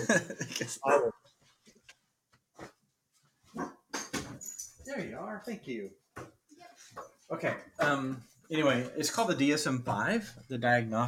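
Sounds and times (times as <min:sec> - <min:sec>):
laughter: 0:00.0 - 0:00.9
speech: 0:00.0 - 0:01.2, 0:04.9 - 0:06.3, 0:06.9 - 0:11.0
dog barking at the door: 0:00.8 - 0:01.2, 0:03.5 - 0:03.8.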